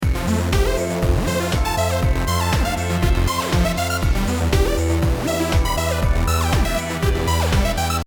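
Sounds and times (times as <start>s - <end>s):
synth lead: 0.0s - 8.0s.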